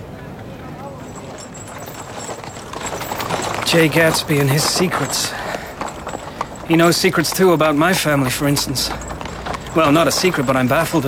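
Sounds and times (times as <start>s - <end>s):
dense busy noise in Central Park: 0.0s - 11.0s
horse hooves clip-clopping pulling a Victoria carriage through Central Park: 0.3s - 11.0s
speech: 3.7s - 5.5s, 6.7s - 9.1s, 9.8s - 11.0s.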